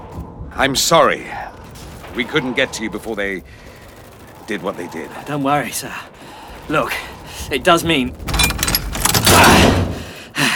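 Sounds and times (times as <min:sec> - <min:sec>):
speech: 0:00.6 - 0:01.5, 0:02.2 - 0:03.7, 0:04.5 - 0:08.5
padlock clanking and rattling as it is taken off a steel door: 0:08.2 - 0:09.8.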